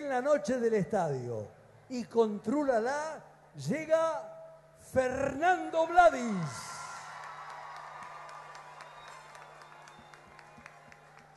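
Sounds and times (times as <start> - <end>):
speech: 0.1 - 4.3, 4.9 - 6.7
crowd applauding: 6.7 - 11.3.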